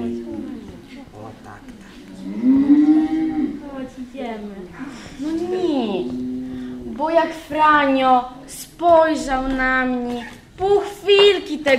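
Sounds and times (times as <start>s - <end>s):
cow mooing: 2.1s - 3.6s, 5.2s - 7.0s
speech: 7.0s - 11.7s.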